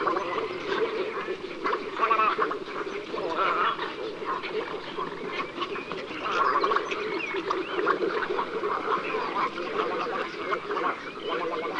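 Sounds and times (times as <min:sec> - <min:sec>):
little egret Egretta garzetta croaking and gargling calls: 0:00.0 - 0:11.7.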